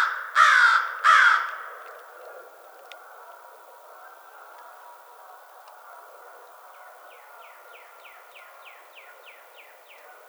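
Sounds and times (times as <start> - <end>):
American crow raspy cawing: 0.0 - 2.5.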